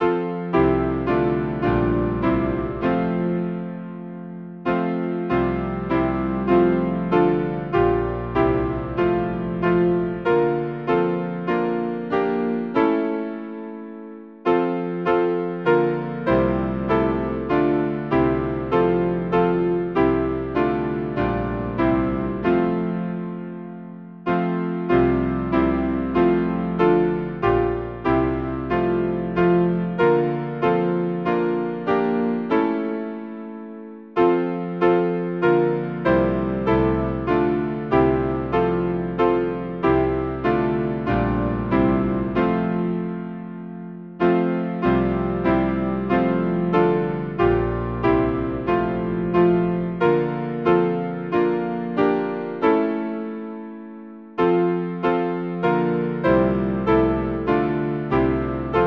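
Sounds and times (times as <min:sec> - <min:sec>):
hymn on piano: 0:00.0 - 0:58.8.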